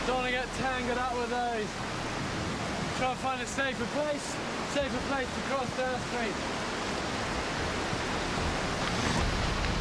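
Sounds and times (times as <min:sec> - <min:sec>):
fast-flowing river rapids: 0:00.0 - 0:09.8
speech: 0:00.1 - 0:02.1, 0:03.0 - 0:06.7.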